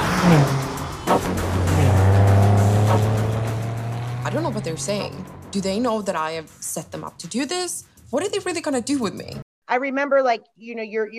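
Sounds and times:
car engine revving hard as the vehicle races by: 0:00.0 - 0:06.1
speech: 0:00.2 - 0:00.6, 0:04.6 - 0:11.1.

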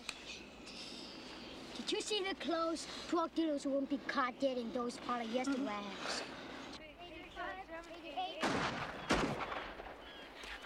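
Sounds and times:
speech: 0:01.9 - 0:06.3
gunshots: 0:08.4 - 0:10.1.

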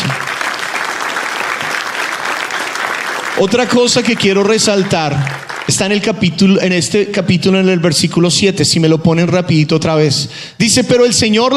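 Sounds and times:
audience applauding: 0:00.0 - 0:06.2
speech: 0:03.4 - 0:11.5.

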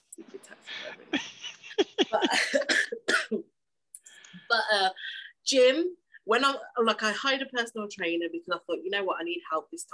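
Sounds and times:
person coughing: 0:02.1 - 0:03.5
speech: 0:05.5 - 0:09.9.

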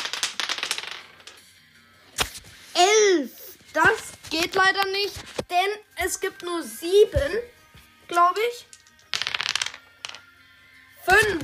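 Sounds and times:
dice being rolled and clattering across a hard surface: 0:00.0 - 0:01.5, 0:03.8 - 0:05.2, 0:08.1 - 0:10.3, 0:11.0 - 0:11.4
speech: 0:03.8 - 0:08.7, 0:11.1 - 0:11.4.

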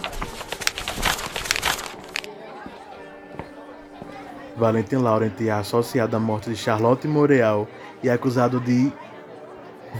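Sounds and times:
paper sheets rustling and crinkling as they are tossed and snatched: 0:00.0 - 0:02.3
speech: 0:04.6 - 0:09.0.

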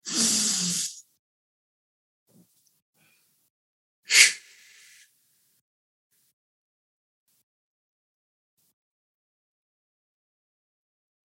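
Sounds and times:
person breathing in through the nose and out through the mouth: 0:03.0 - 0:03.4, 0:04.1 - 0:05.1.

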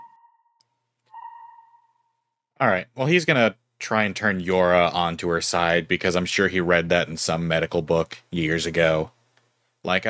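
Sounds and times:
soft sonar-like electronic pings: 0:00.0 - 0:00.5, 0:01.1 - 0:01.9
speech: 0:02.6 - 0:09.2, 0:09.8 - 0:10.0.

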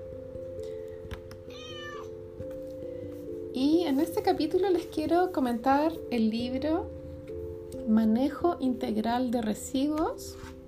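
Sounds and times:
cat meowing: 0:01.4 - 0:02.2
speech: 0:03.9 - 0:07.0, 0:07.9 - 0:10.5.

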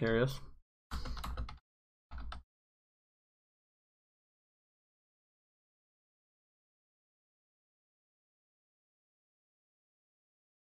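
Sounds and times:
typing on a computer keyboard: 0:00.9 - 0:02.4.

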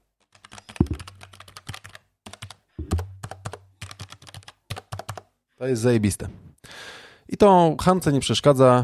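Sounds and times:
rapid typing on a mechanical keyboard: 0:00.2 - 0:02.6, 0:03.2 - 0:05.2
speech: 0:05.6 - 0:06.4, 0:07.4 - 0:08.8.

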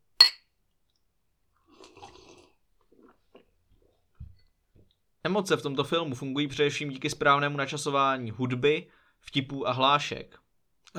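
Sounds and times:
sharp glassy clink: 0:00.2 - 0:00.4
speech: 0:05.2 - 0:10.9.

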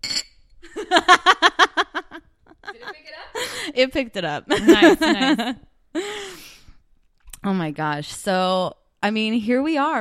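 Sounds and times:
martini glasses filled with dirty martinis clinking in a toast: 0:00.0 - 0:00.4
people laughing: 0:00.8 - 0:03.7, 0:04.5 - 0:05.6
speech: 0:03.8 - 0:05.7, 0:07.4 - 0:10.0.

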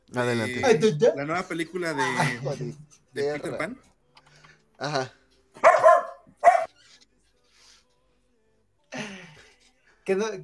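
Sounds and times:
speech: 0:00.1 - 0:03.9, 0:04.8 - 0:05.2, 0:10.1 - 0:10.4
dog barking: 0:05.6 - 0:06.7.

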